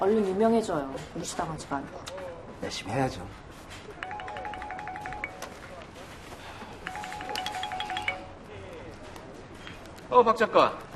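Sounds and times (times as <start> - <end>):
speech: 0.0 - 3.4, 10.1 - 10.8
phone ringtone of quick repeated electronic tones: 4.0 - 5.8, 6.8 - 8.5.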